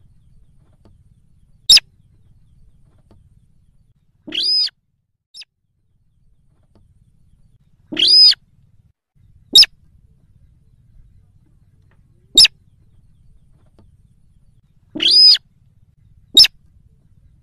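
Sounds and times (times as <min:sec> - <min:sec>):
Yellow-vented Bulbul calls: 0:00.0 - 0:04.7, 0:07.4 - 0:08.4, 0:09.4 - 0:15.5, 0:16.2 - 0:17.4.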